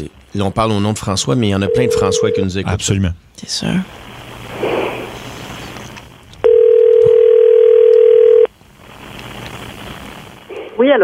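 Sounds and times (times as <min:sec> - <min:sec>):
speech: 0:00.0 - 0:04.1
noise: 0:00.0 - 0:11.0
steady telephone tone from a call being placed: 0:01.6 - 0:02.4, 0:06.4 - 0:08.5.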